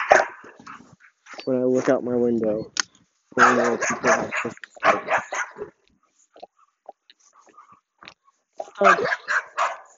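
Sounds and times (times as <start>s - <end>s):
dog barking: 0.0s - 0.8s, 3.4s - 5.8s, 8.7s - 9.9s
speech: 1.5s - 2.8s, 3.4s - 5.8s, 8.8s - 9.2s.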